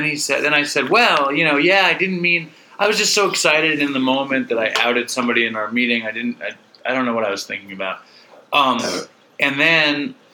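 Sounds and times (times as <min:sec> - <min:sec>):
speech: 0:00.0 - 0:10.2
person burping: 0:08.8 - 0:09.2.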